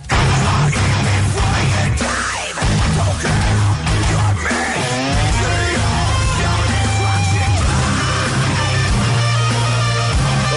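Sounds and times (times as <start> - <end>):
extreme metal band with heavy distorted guitars and pounding drums: 0.0 - 10.5
high-pitched guttural extreme metal scream: 0.0 - 10.5.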